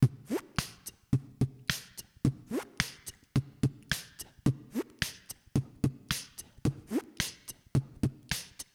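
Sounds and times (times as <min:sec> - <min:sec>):
8-beat drum pattern: 0:00.0 - 0:08.7.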